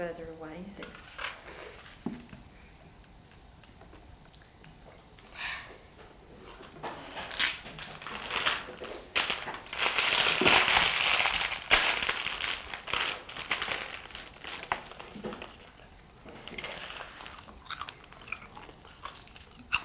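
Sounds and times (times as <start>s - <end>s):
speech: 0.0s - 1.2s
person eating crisps: 6.4s - 19.8s.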